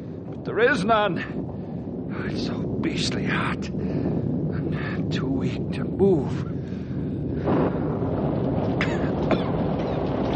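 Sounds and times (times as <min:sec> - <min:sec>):
brief crackling bursts: 0:00.0 - 0:10.3
falling rain: 0:00.0 - 0:10.3
low rumbling roll of thunder: 0:00.0 - 0:10.3
speech: 0:00.4 - 0:01.5, 0:02.2 - 0:04.1, 0:05.1 - 0:06.6.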